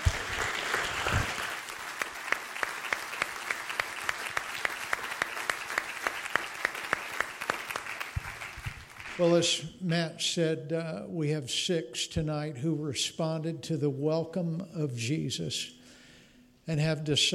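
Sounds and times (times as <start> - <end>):
audience applauding to thank a speaker: 0.0 - 9.5
speech: 9.2 - 15.8, 16.7 - 17.3.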